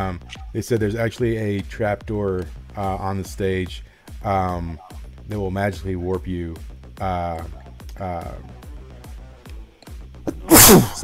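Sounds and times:
speech: 0:00.0 - 0:08.6, 0:10.7 - 0:11.0
loud sneeze: 0:10.3 - 0:11.0.

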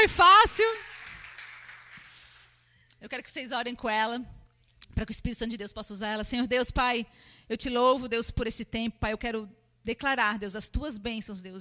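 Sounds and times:
speech: 0:00.0 - 0:00.9, 0:03.0 - 0:04.4, 0:05.0 - 0:11.6
audience applauding: 0:00.4 - 0:02.5.

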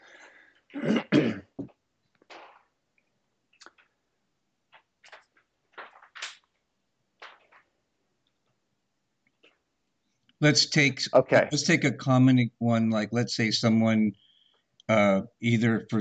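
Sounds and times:
harsh gravelly throat clearing: 0:00.7 - 0:01.7
speech: 0:10.4 - 0:14.2, 0:14.9 - 0:15.9.

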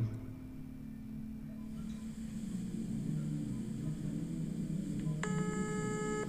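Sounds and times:
low steady hum: 0:00.0 - 0:06.2
cell phone bright electronic ring tone: 0:05.2 - 0:06.2.

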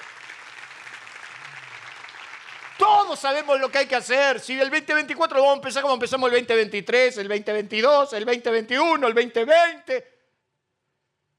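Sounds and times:
audience applause: 0:00.0 - 0:04.0
speech: 0:03.1 - 0:10.2.

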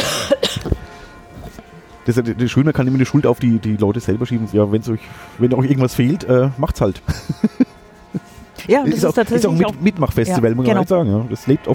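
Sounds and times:
person coughing: 0:00.0 - 0:00.8
speech: 0:02.1 - 0:07.6, 0:08.7 - 0:11.7
laughter: 0:06.6 - 0:10.6.

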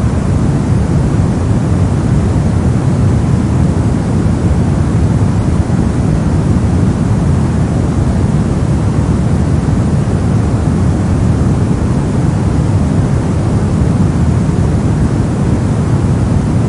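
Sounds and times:
fan white noise: 0:00.0 - 0:16.6.

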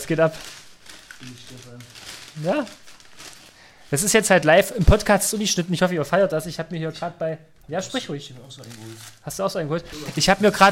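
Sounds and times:
paper fast-food bag crinkling and rustling: 0:00.0 - 0:06.6, 0:07.8 - 0:10.7
speech: 0:00.1 - 0:00.6, 0:01.2 - 0:02.9, 0:03.9 - 0:10.7.

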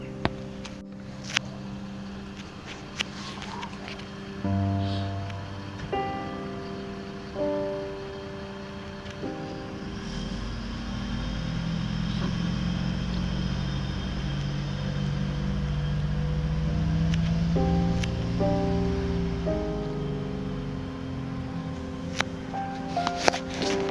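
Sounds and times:
garbage truck hydraulics whining: 0:00.2 - 0:23.8
garbage truck engine droning while collecting bins of mixed waste: 0:00.8 - 0:23.8.

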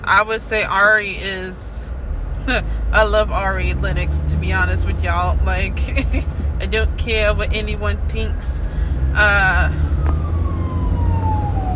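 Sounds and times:
low traffic rumble: 0:00.0 - 0:11.7
speech: 0:00.1 - 0:01.8, 0:02.4 - 0:10.0
ambulance siren wailing: 0:07.2 - 0:11.7.

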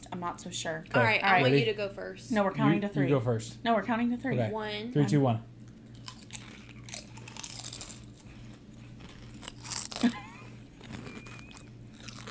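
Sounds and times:
low steady hum: 0:00.0 - 0:12.2
speech: 0:00.2 - 0:05.5
crunching and chewing a salt and vinegar flavoured snack: 0:05.7 - 0:12.2.

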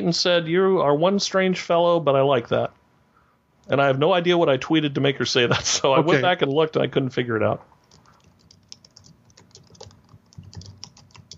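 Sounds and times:
speech: 0:00.0 - 0:02.8, 0:03.7 - 0:07.7
typing on a computer keyboard: 0:07.8 - 0:11.3.

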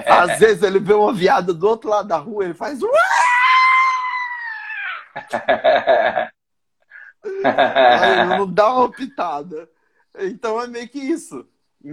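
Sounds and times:
speech: 0:00.0 - 0:03.2, 0:05.2 - 0:06.4, 0:07.2 - 0:11.9
choppy excited vocal sounds: 0:02.8 - 0:05.4, 0:07.2 - 0:08.6
person imitating a high-pitched scream: 0:02.9 - 0:05.2
laughter: 0:07.2 - 0:09.2.

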